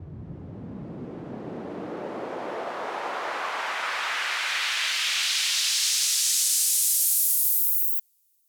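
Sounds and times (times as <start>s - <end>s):
rising uplifter sound effect: 0.1s - 6.9s.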